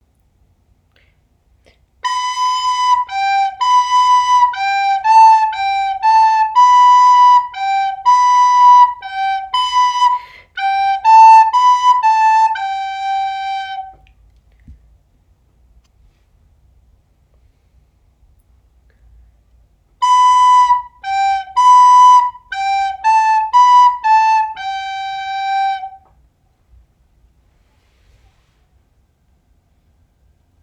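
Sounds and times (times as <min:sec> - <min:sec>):
descant recorder playing a waltz: 0:02.0 - 0:14.0, 0:20.0 - 0:26.1.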